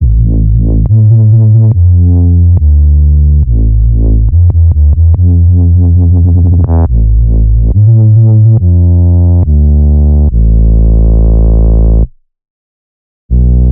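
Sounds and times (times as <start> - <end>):
dubstep spring bass loop in A minor at 140 BPM: 0.0 - 12.1, 13.3 - 13.6.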